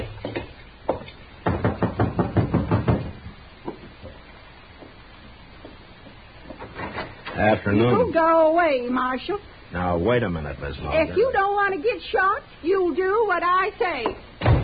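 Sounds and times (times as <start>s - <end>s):
knocking on a wooden door: 0.3s - 3.8s
speech: 7.4s - 14.3s.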